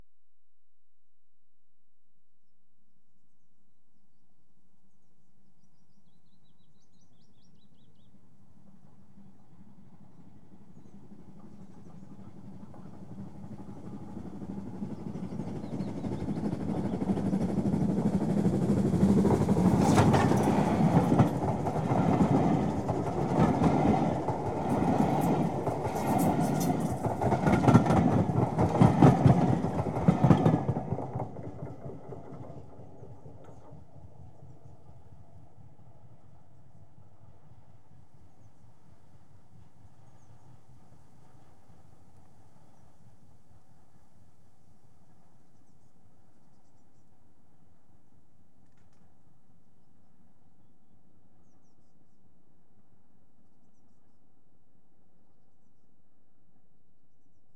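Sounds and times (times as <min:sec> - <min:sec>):
train passing at high speed: 0:08.2 - 0:43.9.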